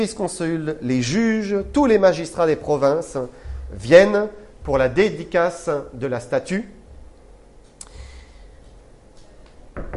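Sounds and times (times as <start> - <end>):
speech: 0.0 - 6.8
low room hum: 0.0 - 9.9
chairs bumping and knocking against something: 1.0 - 5.2, 9.8 - 9.9.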